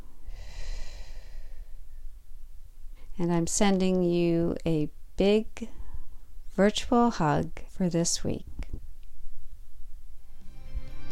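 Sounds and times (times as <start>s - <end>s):
slow relaxed breathing during a guided yoga exercise: 0.0s - 2.2s
low rumble: 0.0s - 10.8s
speech: 3.2s - 5.8s, 6.6s - 8.5s.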